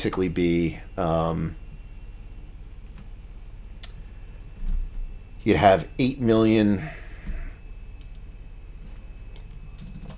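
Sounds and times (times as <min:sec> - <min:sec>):
speech: 0:00.0 - 0:01.6, 0:05.4 - 0:07.4
low hum: 0:00.0 - 0:10.1
typing on a computer keyboard: 0:09.8 - 0:10.1.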